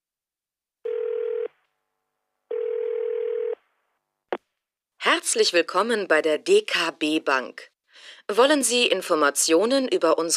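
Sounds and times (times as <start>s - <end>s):
electronic telephone ringing tone on a call to a bank: 0.8s - 1.6s, 2.5s - 3.6s
speech: 5.1s - 10.3s.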